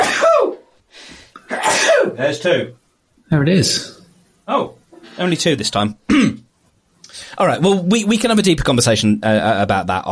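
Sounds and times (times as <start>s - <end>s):
person sneezing: 0.0s - 0.6s, 1.4s - 2.2s
sharp inhale: 0.9s - 1.4s, 7.0s - 7.4s
speech: 2.2s - 6.4s, 7.1s - 10.1s.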